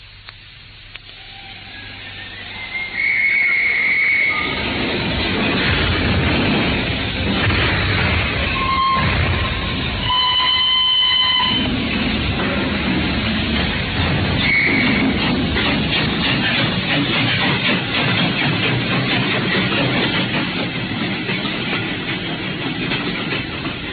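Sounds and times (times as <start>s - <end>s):
steam train whistle blasts: 1.1s - 4.6s, 8.5s - 11.7s, 14.4s - 15.0s
steam train engine chuffing while pulling away: 1.2s - 23.9s.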